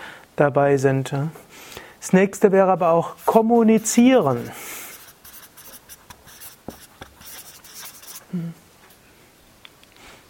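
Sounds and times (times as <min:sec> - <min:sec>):
speech: 0:00.4 - 0:01.4, 0:02.0 - 0:04.6
pen writing on paper: 0:03.8 - 0:08.2.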